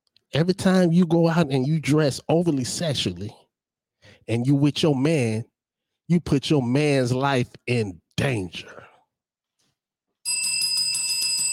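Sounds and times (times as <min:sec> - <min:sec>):
speech: 0:00.3 - 0:03.4, 0:04.2 - 0:05.5, 0:06.1 - 0:08.8
bright ringing bell: 0:10.3 - 0:11.5.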